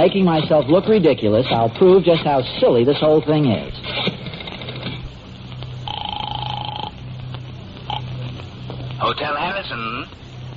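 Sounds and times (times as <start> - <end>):
speech: 0.0 - 4.1, 9.1 - 10.2
low hum: 0.0 - 10.5
steady electronic telephone tone: 3.7 - 10.5.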